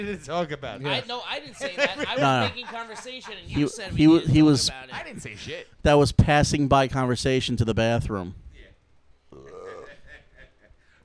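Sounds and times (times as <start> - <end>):
speech: 0.0 - 8.4
laughter: 0.9 - 5.5, 9.7 - 10.8
throaty burp: 9.3 - 10.0.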